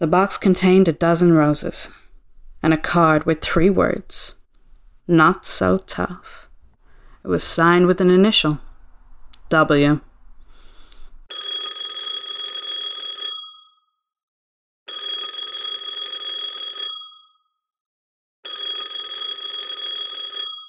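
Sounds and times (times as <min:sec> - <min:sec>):
speech: 0:00.0 - 0:02.0, 0:02.6 - 0:04.4, 0:05.1 - 0:06.4, 0:07.2 - 0:08.7, 0:09.5 - 0:10.1
telephone ringing: 0:11.3 - 0:13.6, 0:14.9 - 0:17.2, 0:18.5 - 0:20.6.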